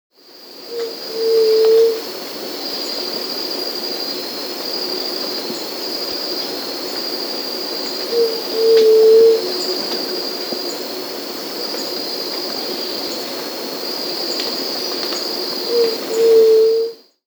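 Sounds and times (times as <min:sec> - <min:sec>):
White-tipped Dove Leptotila verreau in S. America: 0:00.7 - 0:02.1, 0:04.8 - 0:17.0.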